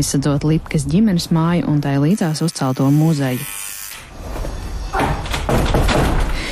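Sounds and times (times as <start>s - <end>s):
speech: 0.0s - 3.7s
door in a black wooden fence thudding shut at a memorial museum: 4.9s - 6.4s.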